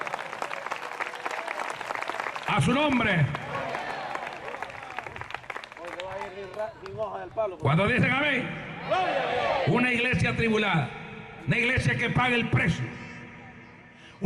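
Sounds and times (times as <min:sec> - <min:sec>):
crowd clapping steadily and densely: 0:00.0 - 0:07.7
speech: 0:02.5 - 0:03.5, 0:06.4 - 0:13.0.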